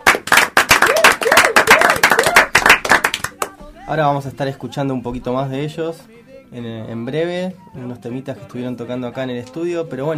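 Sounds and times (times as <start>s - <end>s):
audience applause in a radio studio: 0.0s - 3.4s
speech: 3.9s - 10.1s.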